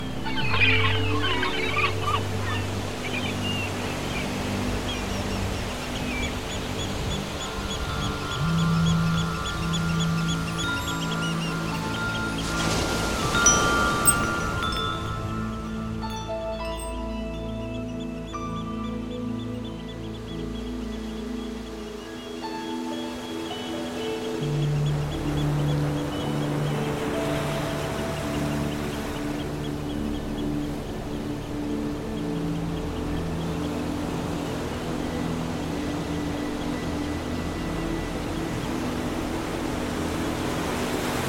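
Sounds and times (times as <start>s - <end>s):
calm sea at the seaside: 0.0s - 41.2s.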